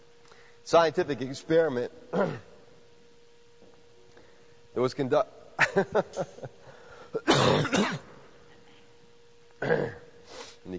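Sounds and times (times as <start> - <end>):
speech: 0.7 - 2.5, 4.8 - 8.1, 9.6 - 10.0
coughing and throat clearing from a clogged throat: 2.1 - 2.6, 7.2 - 8.2, 9.6 - 10.2.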